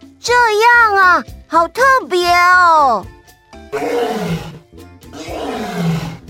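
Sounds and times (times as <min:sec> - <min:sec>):
speech: 0:00.2 - 0:04.5
deep powerful lion roaring: 0:03.7 - 0:06.2.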